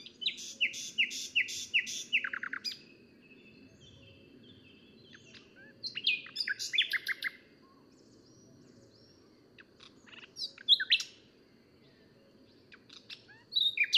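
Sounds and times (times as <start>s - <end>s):
common nightingale Luscinia megarhynchos singing: 0.0s - 13.9s.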